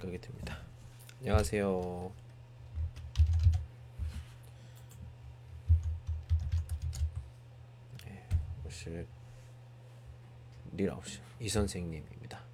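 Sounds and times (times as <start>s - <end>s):
speech: 0.0s - 2.2s, 8.8s - 9.2s, 10.7s - 12.4s
typing on a computer keyboard: 2.7s - 3.6s, 5.7s - 7.2s.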